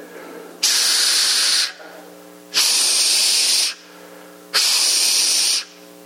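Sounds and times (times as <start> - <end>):
voice imitating the hiss of a 1980 model CPAP machine: 0.0 - 5.9.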